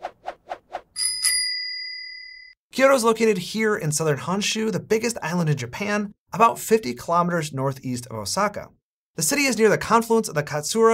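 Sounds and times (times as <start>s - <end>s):
bicycle bell ringing: 1.0s - 2.6s
speech: 2.8s - 10.9s.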